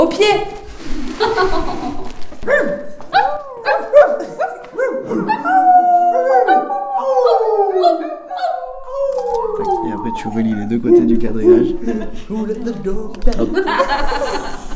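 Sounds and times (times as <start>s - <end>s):
speech: 0.0s - 6.2s, 10.0s - 14.6s
laughter: 1.1s - 2.4s, 3.6s - 6.0s, 9.2s - 14.7s
people yipping and barking: 1.2s - 14.7s
several friends howling like a pack of dogs: 2.6s - 14.7s.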